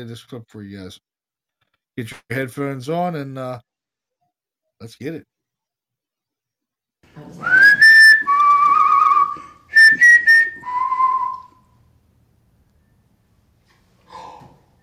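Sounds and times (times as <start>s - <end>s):
speech: 0.0s - 1.1s, 2.0s - 3.7s, 4.8s - 5.3s, 7.1s - 7.8s
whistled tune on a recording: 7.4s - 11.8s.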